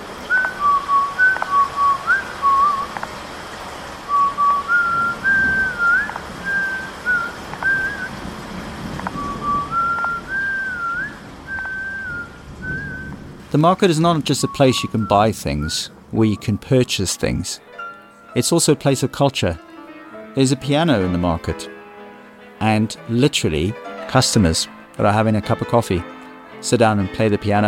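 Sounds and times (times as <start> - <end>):
constant noisy hum: 0.0 - 18.3
person whistling a song: 0.3 - 3.0, 4.1 - 8.1, 9.1 - 13.2, 14.4 - 16.6
speech: 13.6 - 19.7, 20.4 - 21.8, 22.6 - 27.6.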